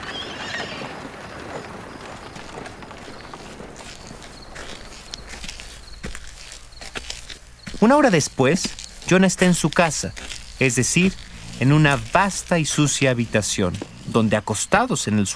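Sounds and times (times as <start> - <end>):
horse hooves clopping in a trot: 0.0 - 14.8
speech: 7.8 - 15.3.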